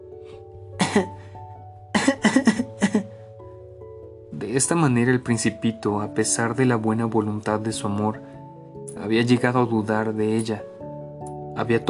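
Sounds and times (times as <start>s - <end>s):
person coughing: 0.8s - 1.2s, 1.9s - 3.1s
speech: 1.0s - 1.2s, 4.6s - 8.3s, 9.0s - 10.7s, 11.6s - 11.8s.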